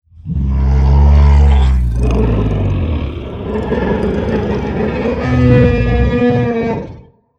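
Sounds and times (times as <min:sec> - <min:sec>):
t-rex growl: 0:00.2 - 0:07.3.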